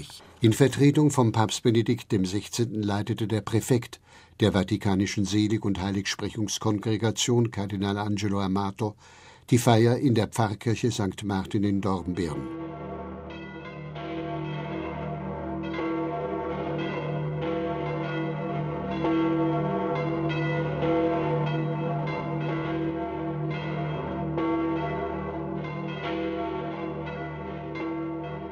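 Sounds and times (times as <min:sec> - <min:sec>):
speech: 0:00.0 - 0:13.0
several church bells pealing: 0:11.3 - 0:28.5.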